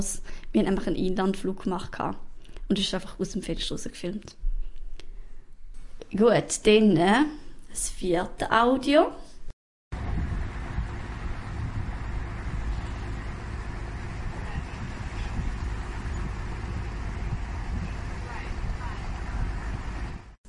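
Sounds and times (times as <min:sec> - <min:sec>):
speech: 0:00.0 - 0:04.4, 0:06.1 - 0:09.2
boat engine rumble: 0:10.0 - 0:20.4
wind buffeting the microphone: 0:10.0 - 0:20.4.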